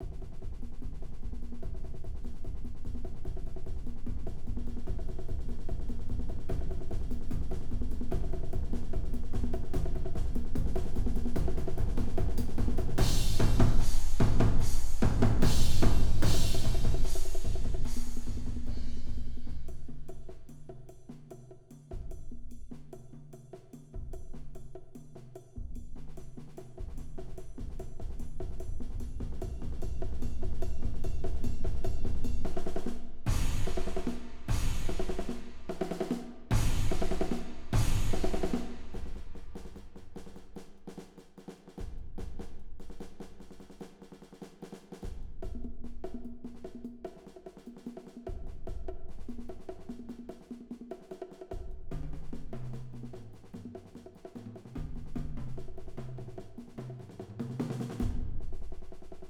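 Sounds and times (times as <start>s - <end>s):
concert bass drum: 0.0s - 20.1s, 27.5s - 40.2s
snare drum: 0.0s - 21.3s, 26.0s - 59.2s
bongos: 0.0s - 59.2s
crash cymbal: 13.0s - 20.0s, 33.3s - 39.7s.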